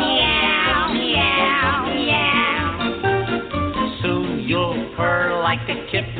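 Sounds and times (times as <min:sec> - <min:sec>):
singing voices imitating a cat's meowing: 0:00.0 - 0:02.9
loud continuous upbeat polka music: 0:00.0 - 0:06.1
speech: 0:05.6 - 0:06.1.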